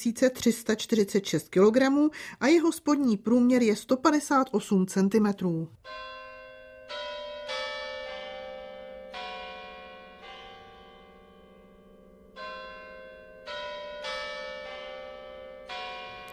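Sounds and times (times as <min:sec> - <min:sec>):
speech: 0:00.0 - 0:06.2
carillon playing a hymn refrain: 0:05.8 - 0:16.3.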